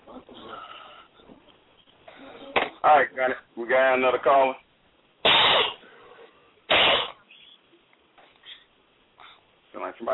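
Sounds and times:
speech: 0:02.8 - 0:04.6, 0:10.0 - 0:10.1
person coughing: 0:05.3 - 0:05.8.

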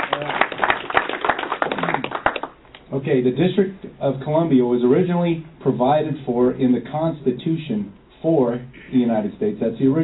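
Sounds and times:
audience applause at a talk on the Constitution: 0:00.0 - 0:02.6
speech: 0:03.0 - 0:10.0.

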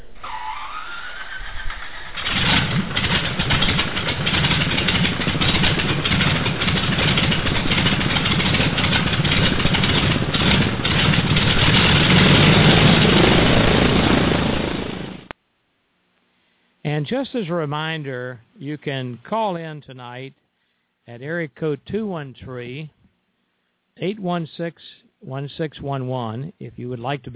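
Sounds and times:
propeller aircraft engine starting and running: 0:00.0 - 0:15.3
speech: 0:17.2 - 0:20.4, 0:21.1 - 0:23.0, 0:24.0 - 0:27.3.

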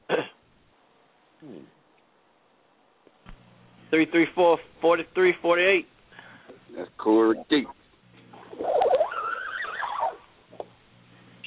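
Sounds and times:
speech: 0:03.9 - 0:05.9, 0:06.7 - 0:07.8
horse neighing: 0:08.4 - 0:10.3.

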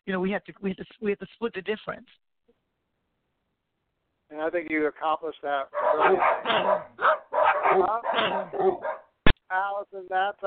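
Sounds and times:
speech: 0:00.1 - 0:02.3, 0:04.3 - 0:10.4
diabetes alert dog barking and yelping: 0:05.7 - 0:09.2.

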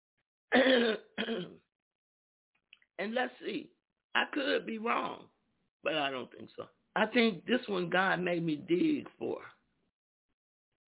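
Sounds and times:
person coughing on cue: 0:00.5 - 0:01.6
speech: 0:00.5 - 0:01.6, 0:03.0 - 0:09.6.

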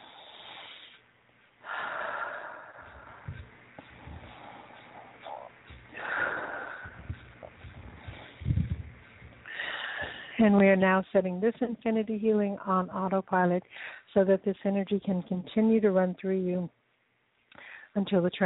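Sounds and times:
slow deep breaths during a guided healing meditation: 0:01.6 - 0:10.4
speech: 0:10.4 - 0:16.8, 0:18.0 - 0:18.4.

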